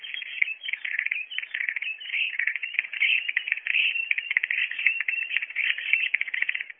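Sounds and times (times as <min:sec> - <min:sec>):
recorded starling calls: 0:00.0 - 0:06.7.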